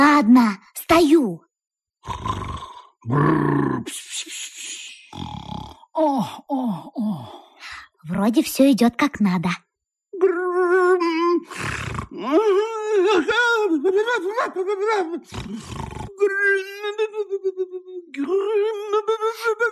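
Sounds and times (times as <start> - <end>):
speech: 0.2 - 2.4, 3.0 - 4.4, 6.0 - 7.4, 8.0 - 9.6, 10.2 - 19.7
sleeping man moaning during a nightmare: 2.0 - 3.9, 5.0 - 7.6, 11.1 - 13.2, 15.2 - 16.4
sleeping man's rasping snore-like breaths: 2.0 - 3.9, 5.1 - 6.0, 11.5 - 12.3, 15.3 - 16.2.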